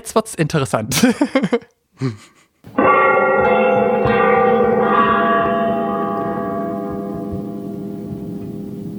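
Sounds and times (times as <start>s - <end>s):
speech: 0.0s - 3.2s
large deep clock tower bell ringing: 2.7s - 8.9s.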